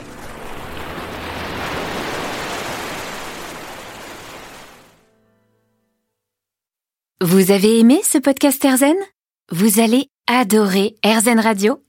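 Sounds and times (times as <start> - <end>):
ocean waves washing onto a sandy beach: 0.0 - 5.1
speech: 7.2 - 11.8.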